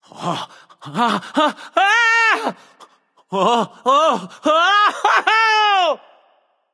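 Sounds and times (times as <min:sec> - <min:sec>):
non-verbal fearful voice: 0:00.0 - 0:06.3.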